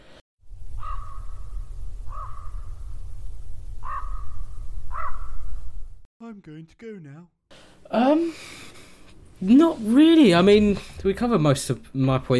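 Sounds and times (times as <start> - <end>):
raven cawing: 0.7 - 1.5, 2.1 - 2.7, 3.8 - 5.4
speech: 6.3 - 8.6, 9.4 - 12.3.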